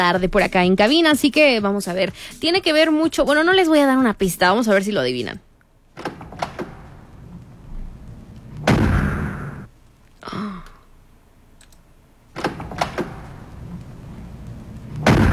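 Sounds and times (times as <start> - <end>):
speech: 0.0 - 5.4
loud sharp gunshots: 8.7 - 9.7, 15.0 - 15.3.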